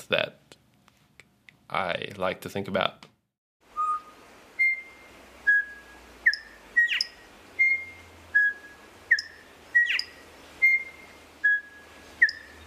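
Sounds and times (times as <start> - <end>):
speech: 0.0 - 0.4, 1.7 - 3.1
male bird singing clear whistled notes: 3.8 - 12.6.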